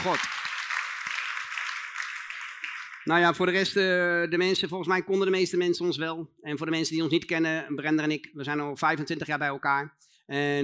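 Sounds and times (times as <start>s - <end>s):
speech: 0.0s - 0.5s, 3.1s - 10.6s
crowd clapping: 0.0s - 3.8s.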